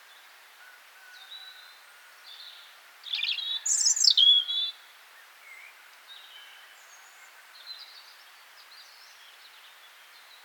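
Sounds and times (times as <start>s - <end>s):
soft background noise: 0.0s - 10.4s
European robin Erithacus rubecula singing: 3.1s - 4.8s.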